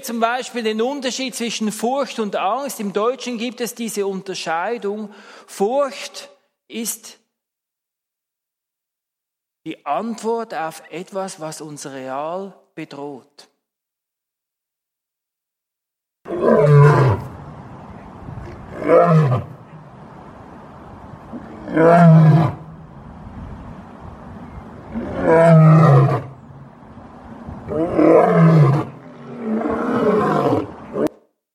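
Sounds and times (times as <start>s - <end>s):
speech: 0.0s - 7.2s, 9.6s - 13.5s, 16.3s - 17.0s, 18.9s - 19.5s, 21.8s - 22.5s, 25.2s - 26.2s, 27.7s - 28.8s
lion roaring: 16.3s - 17.3s, 18.4s - 19.8s, 21.3s - 22.7s, 24.9s - 26.4s, 27.7s - 31.1s.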